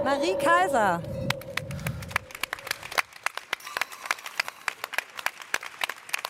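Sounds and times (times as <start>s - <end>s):
speech: 0.2s - 1.2s
modest crowd clapping: 1.3s - 6.2s.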